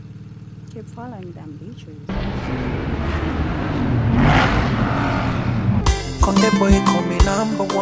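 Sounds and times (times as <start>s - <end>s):
car driving with engine and road noise: 0.0s - 7.4s
speech: 0.7s - 3.6s, 6.3s - 7.8s.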